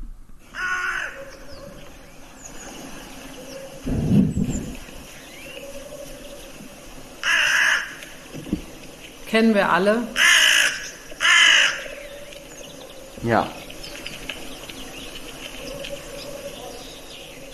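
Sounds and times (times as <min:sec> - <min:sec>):
hooded crow cawing in a played-back recording: 0:00.5 - 0:01.3, 0:07.2 - 0:08.2, 0:10.1 - 0:12.1
speech: 0:09.3 - 0:10.2, 0:13.3 - 0:13.6.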